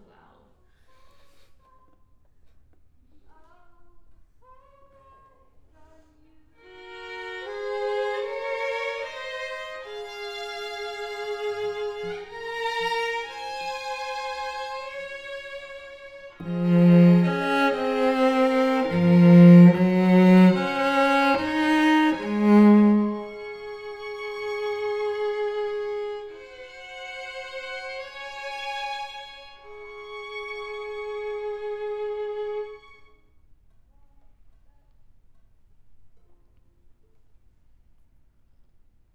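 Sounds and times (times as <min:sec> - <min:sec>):
cello: 0:06.6 - 0:33.3.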